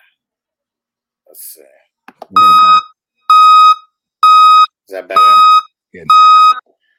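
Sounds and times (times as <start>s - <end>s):
speech: 1.3s - 2.8s, 4.9s - 6.3s
dump truck electronic backup beeper: 2.3s - 6.6s.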